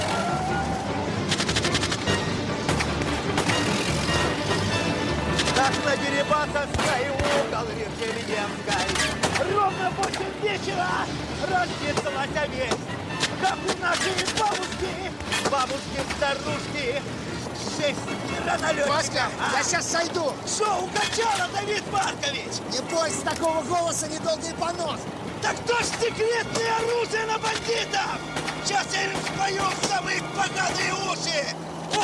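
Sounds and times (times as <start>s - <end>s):
car engines rumbling during a chase: 0.0s - 32.0s
gunfire from windows of cars during a chase: 1.2s - 4.0s.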